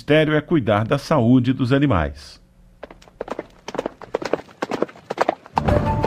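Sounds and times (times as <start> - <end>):
speech: 0.0 - 2.4
horse hooves clip-clopping: 2.8 - 6.0.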